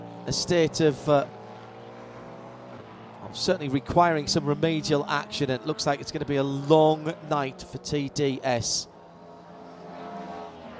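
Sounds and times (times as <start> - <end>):
Porsche race car engine roaring as it passes the line: 0.0 - 10.7
speech: 0.2 - 1.4, 3.3 - 8.9.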